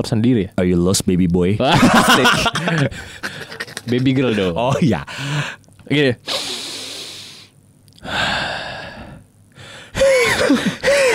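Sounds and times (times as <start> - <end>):
speech: 0.0 - 6.5
laughter: 1.6 - 5.0
rasping breaths with a whistling wheeze: 2.8 - 3.6, 5.1 - 11.1.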